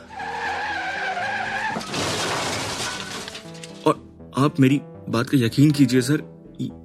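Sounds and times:
car tires squealing in a skid: 0.0s - 3.2s
car crashing into a tree with crunching shattering debris: 0.9s - 3.7s
speech: 3.8s - 6.8s.

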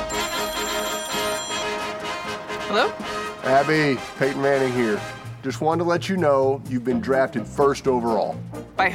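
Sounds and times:
telephone ringing during an outgoing call: 0.1s - 2.1s
speech: 2.7s - 8.9s.

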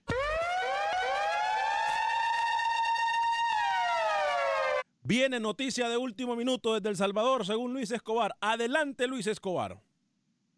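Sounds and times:
loud alarm siren sound effect announcing last-minute news: 0.0s - 4.8s
speech: 5.1s - 9.9s.

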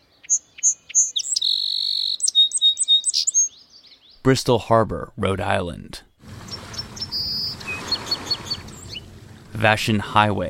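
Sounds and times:
song sparrow singing: 0.0s - 4.2s, 6.3s - 9.6s
speech: 4.2s - 6.1s, 9.6s - 10.4s.

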